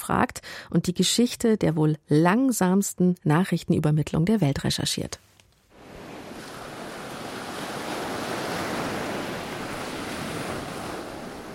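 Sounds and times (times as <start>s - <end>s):
speech: 0.1s - 5.3s
gentle waves on a sandy beach: 5.7s - 11.5s.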